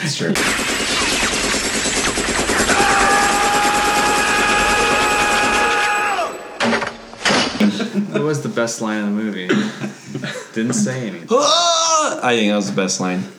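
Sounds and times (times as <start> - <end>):
laughter: 0.0 - 0.7, 7.6 - 12.8
helicopter rotor chopping: 0.0 - 5.8
speech: 0.1 - 1.0, 8.2 - 13.3.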